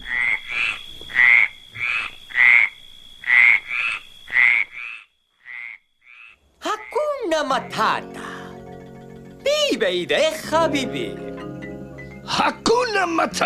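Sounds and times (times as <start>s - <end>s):
frog croaking: 0.0s - 9.4s
speech: 7.6s - 8.2s, 9.7s - 11.3s, 12.3s - 13.4s.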